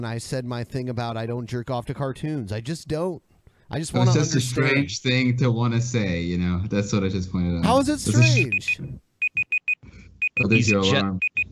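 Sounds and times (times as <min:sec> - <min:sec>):
speech: 0:00.0 - 0:09.1, 0:10.4 - 0:11.4
alarm beeping in short high-pitched tones: 0:08.1 - 0:11.5.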